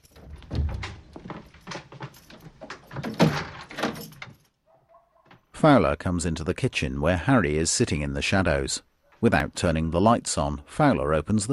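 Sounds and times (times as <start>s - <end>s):
kitchen door closing with wooden thuds and knocks: 0.2s - 4.4s
speech: 5.6s - 11.5s.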